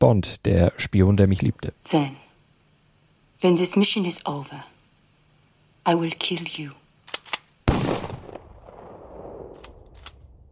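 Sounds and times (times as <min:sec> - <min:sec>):
speech: 0:00.0 - 0:02.2, 0:03.4 - 0:04.7, 0:05.8 - 0:06.8
gunshots inside a family villa: 0:07.7 - 0:10.2.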